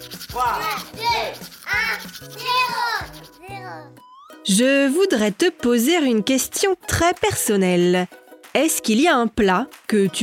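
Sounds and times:
toothbrush brushing teeth: 0.0 - 3.9
speech: 0.0 - 10.2.

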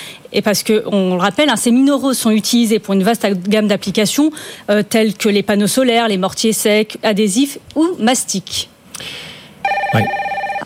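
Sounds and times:
speech: 0.3 - 9.3, 9.9 - 10.2
telephone ringing with a rapidly trilling electronic bell: 9.7 - 10.6.

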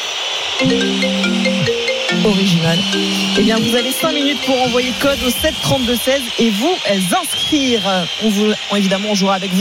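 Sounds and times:
speech: 0.6 - 1.5, 2.2 - 9.5
phone ringtone with sustained electronic tones: 0.6 - 6.1.

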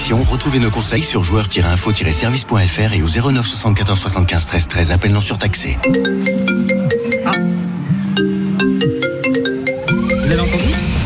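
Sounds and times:
speech: 0.1 - 7.5
smartphone ringtone electronic melody: 5.8 - 11.0.

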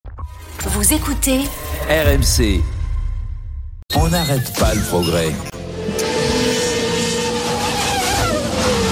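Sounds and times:
speech: 0.3 - 2.8, 4.0 - 6.1
autonomous race cars roaring past at speed: 5.6 - 8.9.

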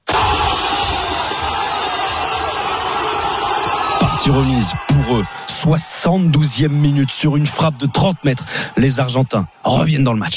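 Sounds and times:
crowd of thousands of supporters cheering in a fan zone in a Buenos Aires park: 0.0 - 10.3
speech: 4.3 - 10.3.

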